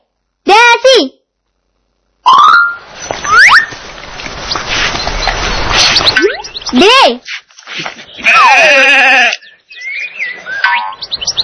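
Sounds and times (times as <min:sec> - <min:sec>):
speech: 0:01.0 - 0:01.2, 0:07.0 - 0:09.4
chirpy tones: 0:02.3 - 0:07.0, 0:09.2 - 0:11.4
sheep bleating with a quavering tone: 0:08.2 - 0:09.4.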